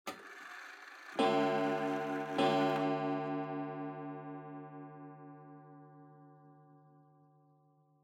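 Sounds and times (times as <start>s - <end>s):
pendulum clock chime: 1.2s - 6.6s.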